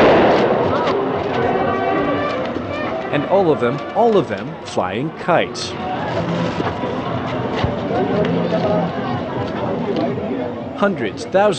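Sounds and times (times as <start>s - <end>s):
firecrackers crackling at a rooftop festival at night: 0.0s - 2.7s
rooftop festival crowd voices at night: 0.0s - 11.5s
speech: 3.3s - 11.5s.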